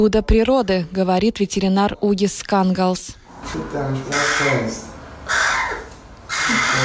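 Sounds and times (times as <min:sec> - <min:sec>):
speech: 0:00.0 - 0:05.4, 0:06.5 - 0:06.8
young crow chick cawing: 0:04.1 - 0:06.8.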